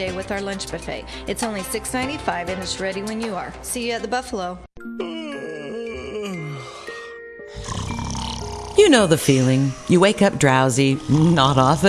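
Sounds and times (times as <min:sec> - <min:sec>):
speech: 0:00.0 - 0:05.1, 0:08.9 - 0:11.8
loud snoring: 0:05.7 - 0:11.8.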